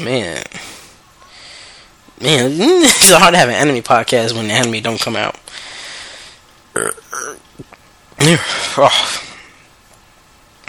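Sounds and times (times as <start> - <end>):
speech: 0.0 - 0.5, 2.2 - 5.7, 6.8 - 7.0, 8.2 - 9.2
faint hiss: 0.0 - 10.6
loud burp: 6.7 - 7.5
soft throat sounds: 6.8 - 7.8.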